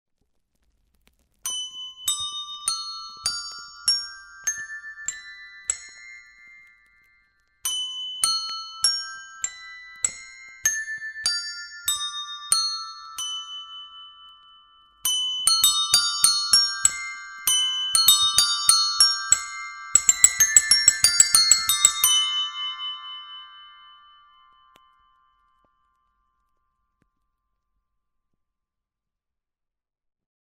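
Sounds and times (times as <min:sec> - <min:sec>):
bells pressed without a handle: 0:01.5 - 0:25.5.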